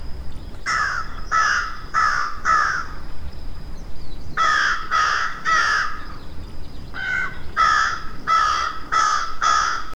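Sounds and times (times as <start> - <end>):
crow cawing: 0.7 - 2.9, 4.4 - 6.0, 7.0 - 9.9.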